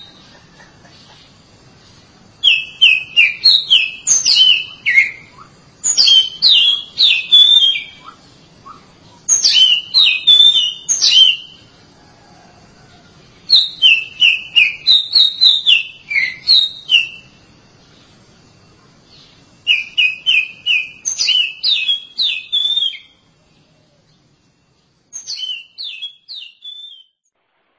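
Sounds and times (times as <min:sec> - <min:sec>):
Oriental magpie-robin singing clear descending whistled notes: 0:02.4 - 0:11.6, 0:13.4 - 0:17.4, 0:19.1 - 0:23.7, 0:25.1 - 0:27.2.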